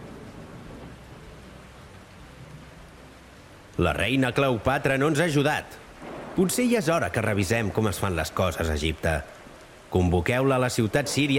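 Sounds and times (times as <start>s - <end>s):
low rumbling thunder: 0.0s - 3.2s, 5.9s - 8.2s
heavy rain: 0.0s - 11.3s
speech: 3.8s - 11.3s.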